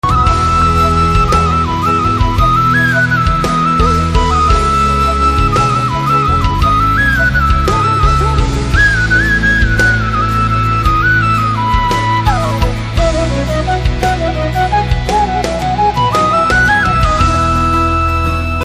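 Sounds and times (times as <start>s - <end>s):
flute background music ringtone: 0.0s - 18.6s.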